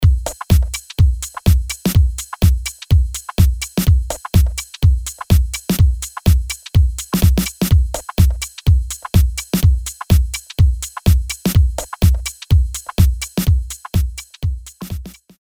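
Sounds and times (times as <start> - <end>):
club dance beat: 0.0 - 15.3.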